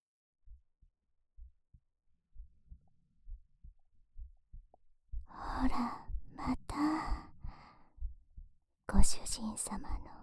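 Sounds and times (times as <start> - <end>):
heartbeat thumping: 1.4 - 9.2
speech: 9.0 - 10.2.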